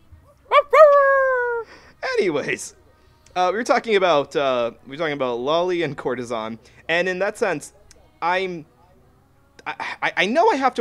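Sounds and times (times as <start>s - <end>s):
dog yelping: 0.5s - 1.6s
speech: 2.2s - 2.8s, 3.4s - 8.7s, 9.6s - 10.8s.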